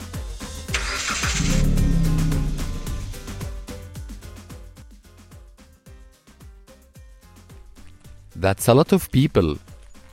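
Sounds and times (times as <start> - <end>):
car engine cranking, starting and revving as the car pulls away: 0.7 - 3.5
speech: 8.4 - 9.6.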